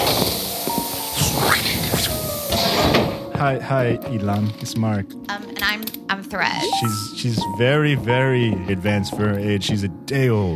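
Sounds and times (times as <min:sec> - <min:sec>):
sliding door opening: 0:00.0 - 0:03.3
steady airy pneumatic hiss of a sliding door: 0:00.0 - 0:03.3
speech: 0:03.4 - 0:10.5.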